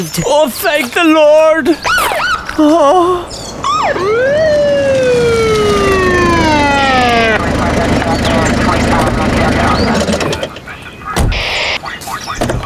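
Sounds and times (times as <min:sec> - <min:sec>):
speech: 0:00.0 - 0:05.2
police car engine rumbling: 0:01.0 - 0:12.6
police car siren wailing: 0:01.8 - 0:10.6, 0:11.3 - 0:11.8
clattering vehicle noise: 0:01.8 - 0:11.4, 0:12.0 - 0:12.6.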